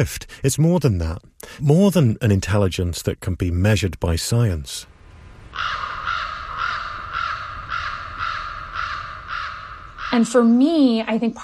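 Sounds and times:
speech: 0.0s - 4.9s, 5.6s - 5.9s, 10.2s - 11.4s
crow cawing: 5.5s - 10.6s.

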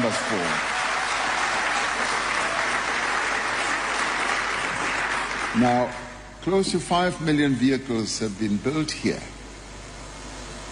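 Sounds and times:
audience applause: 0.0s - 5.9s
speech: 0.1s - 0.8s, 5.5s - 9.3s.

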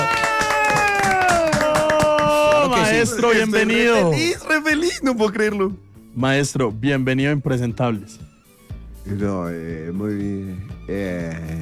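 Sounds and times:
audience applause welcoming a comedian: 0.0s - 3.2s
speech: 3.0s - 8.3s, 9.0s - 11.6s.

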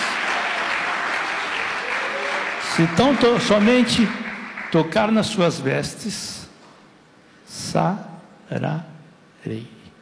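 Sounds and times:
congregation clapping hard in praise at an evangelical worship service: 0.0s - 5.5s
speech: 2.8s - 6.4s, 7.5s - 9.8s.

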